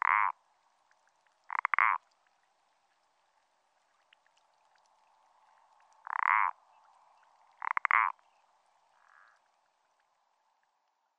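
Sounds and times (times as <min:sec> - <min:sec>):
common parsley frog croaking in France: 0:00.0 - 0:00.4, 0:01.5 - 0:02.1, 0:06.0 - 0:06.7, 0:07.6 - 0:08.3, 0:09.0 - 0:09.4.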